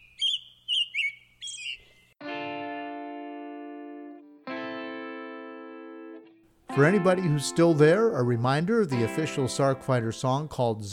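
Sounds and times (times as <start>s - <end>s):
short bright bird chirps: 0.0s - 2.2s
speech: 6.8s - 10.9s.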